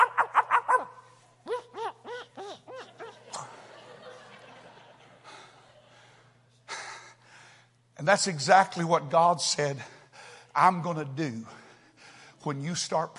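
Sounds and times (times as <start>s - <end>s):
muzzled dog yelping: 0.0s - 3.2s
laughter: 1.5s - 6.3s
speech: 8.0s - 10.0s, 10.6s - 11.6s, 12.4s - 13.1s.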